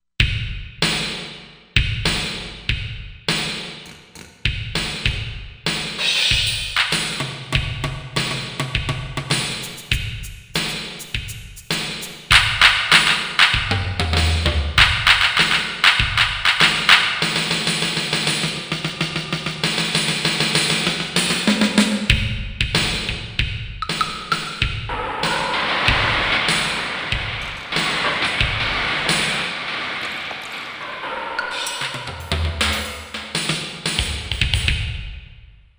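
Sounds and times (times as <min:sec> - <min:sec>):
drums from a sound module: 0:00.2 - 0:35.7
sound effects from a sound module: 0:24.9 - 0:33.5.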